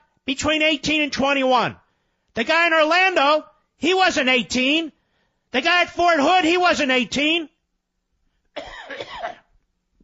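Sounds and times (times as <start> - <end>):
speech: 0.3 - 1.8, 2.4 - 7.5
harsh raspy coughing and throat clearing: 8.5 - 9.6.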